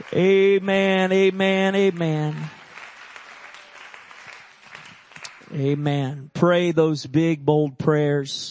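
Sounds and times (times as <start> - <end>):
speech: 0.0 - 2.6, 5.5 - 8.4
audience clapping hands in praise: 0.0 - 6.2.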